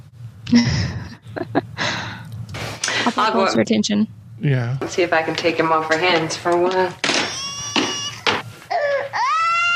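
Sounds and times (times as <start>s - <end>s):
speech: 0.5s - 1.6s, 3.2s - 7.1s
laughter: 0.5s - 1.7s
baby crying: 7.1s - 9.7s.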